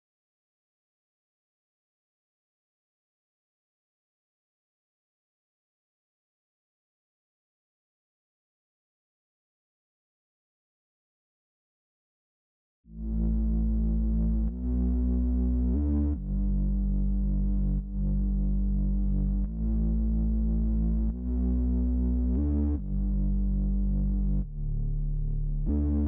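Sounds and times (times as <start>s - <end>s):
145 BPM D major bass loop: 12.9s - 26.0s.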